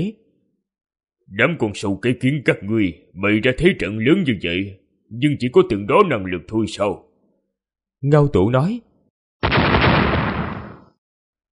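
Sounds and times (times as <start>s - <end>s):
speech: 0.0s - 0.2s, 1.3s - 7.1s, 8.0s - 9.6s
thunderous blast from a lightning strike directly overhead: 9.4s - 11.0s.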